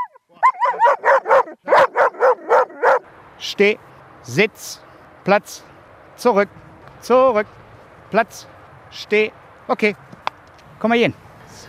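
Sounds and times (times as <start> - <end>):
female German shepherd with a soft coat barking on command: 0.0 - 3.1
speech: 3.4 - 10.1, 10.8 - 11.6.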